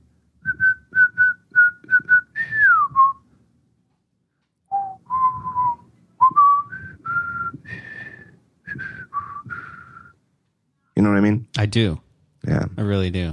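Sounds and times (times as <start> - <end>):
person whistling a film theme melody: 0.4 - 3.2, 4.7 - 10.2
speech: 11.7 - 13.3.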